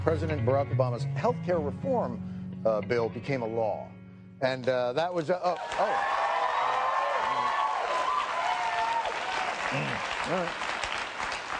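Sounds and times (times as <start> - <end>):
speech: 0.0 - 6.2, 9.7 - 10.7
large crowd applauding: 5.4 - 11.5
crowd cheers and whoops: 5.6 - 9.8.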